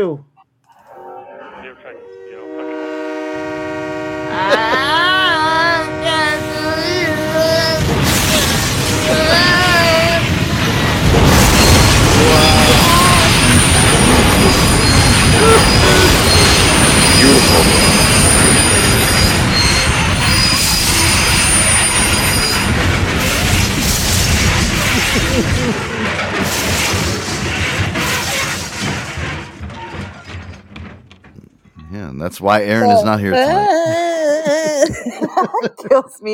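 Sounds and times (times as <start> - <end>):
speech: 0.0 - 0.3, 32.1 - 34.0, 34.6 - 36.3
subway train roaring and rumbling: 1.9 - 28.4
subway train wheels squealing: 4.1 - 32.0
laughter: 4.3 - 5.5, 13.9 - 17.9, 24.7 - 26.2, 32.0 - 36.2
heavy crashing impacts of subway train crash: 7.8 - 31.1.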